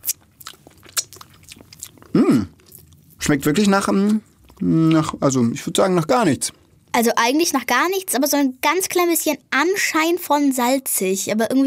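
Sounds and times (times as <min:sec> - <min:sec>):
crunchy chewing and biting of edible gold leaf from a small spoon: 0:00.0 - 0:05.6
speech: 0:02.1 - 0:02.6, 0:03.2 - 0:11.6.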